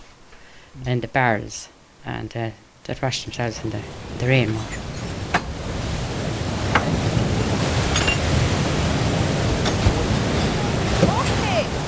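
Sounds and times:
speech: 0.7s - 4.9s
river Brosna rushing past the water wheel it powers: 3.5s - 11.8s
brief splashes and knocks: 6.6s - 8.8s, 9.4s - 11.3s.

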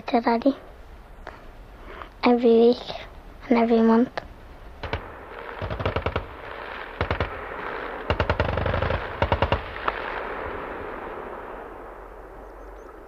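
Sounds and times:
speech: 0.1s - 0.7s, 2.2s - 4.2s
general-purpose machine gun in the sustained-fire role firing bursts on a military range: 4.8s - 10.5s.

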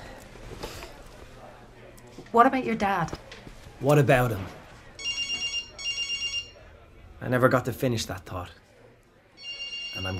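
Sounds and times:
speech: 2.3s - 3.2s, 3.8s - 4.6s, 7.2s - 8.6s, 10.0s - 10.1s
telephone ringing with rapid trilling bell tones: 5.0s - 6.6s, 9.4s - 10.1s.

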